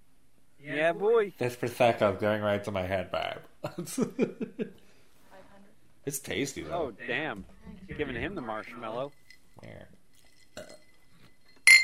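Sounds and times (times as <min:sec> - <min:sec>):
speech: 0:00.9 - 0:04.9, 0:06.0 - 0:10.0
glasses clinking in a toast: 0:10.2 - 0:11.8.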